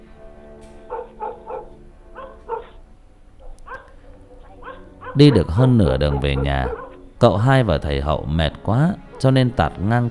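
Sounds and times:
dogs barking across a field at night by a moonlit country road: 0:00.8 - 0:07.3, 0:09.0 - 0:09.6
speech: 0:05.2 - 0:10.0.

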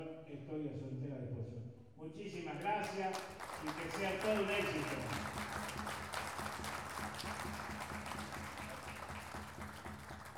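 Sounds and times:
speech: 0:00.0 - 0:05.7
audience applause at a pluricultural gathering celebrating indigenous languages: 0:02.6 - 0:10.3.

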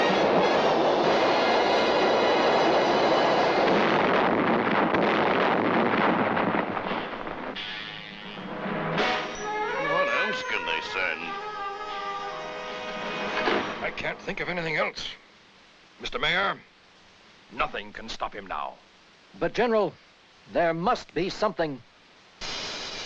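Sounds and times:
cartoon ground-to-air missiles launching with rushing roar: 0:00.2 - 0:09.3
wavering high whistling tones: 0:09.2 - 0:12.9
speech: 0:14.3 - 0:15.2, 0:16.0 - 0:16.7, 0:17.5 - 0:22.5.

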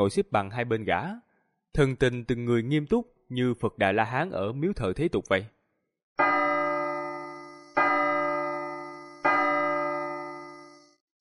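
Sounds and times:
speech: 0:00.0 - 0:05.6
bell struck with bright metallic tone: 0:06.2 - 0:11.0.

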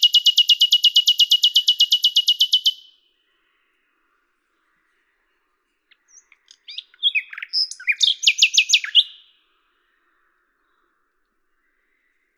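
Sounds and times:
common nightingale singing: 0:00.0 - 0:03.0, 0:05.9 - 0:09.5.

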